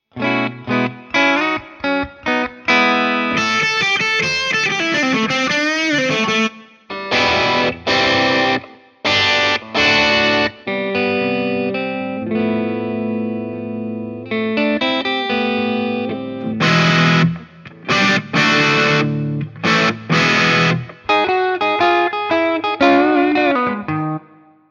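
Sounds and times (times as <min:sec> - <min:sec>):
guitar amplifier: 0:00.0 - 0:24.6.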